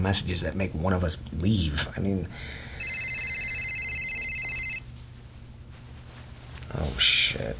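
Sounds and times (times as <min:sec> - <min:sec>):
speech: 0:00.0 - 0:02.7, 0:06.8 - 0:07.5
low hum: 0:00.0 - 0:07.5
phone ringing with incoming call: 0:02.8 - 0:05.0.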